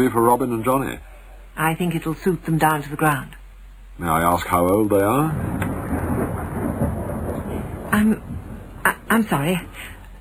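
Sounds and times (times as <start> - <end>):
speech: 0.0 - 3.4, 4.0 - 5.6, 8.0 - 8.2, 9.1 - 10.0
thunder rumbling: 4.1 - 10.1.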